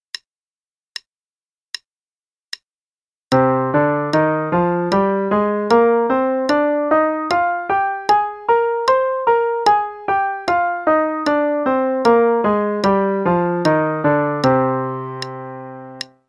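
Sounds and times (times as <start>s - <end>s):
C natural minor scale played: 3.3s - 16.2s.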